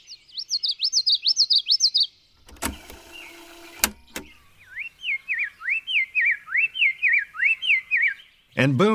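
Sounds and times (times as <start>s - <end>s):
many birds singing in a forest: 0.0s - 8.9s
mechanical whir and clicks: 2.4s - 4.6s.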